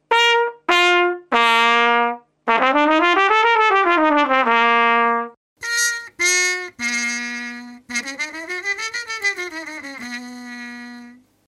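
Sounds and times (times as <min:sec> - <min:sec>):
trumpet with compact practice mute: 0:00.1 - 0:11.2.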